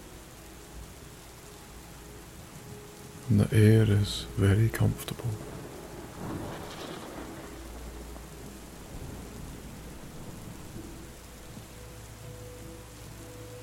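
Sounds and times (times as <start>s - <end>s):
heavy rain: 0.0s - 13.6s
speech: 3.3s - 5.6s
distant rolling thunder: 5.4s - 11.6s.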